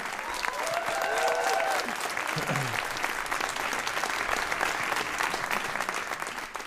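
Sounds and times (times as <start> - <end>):
audience applause: 0.0 - 6.6
faint audience voices and whoops: 0.2 - 2.1.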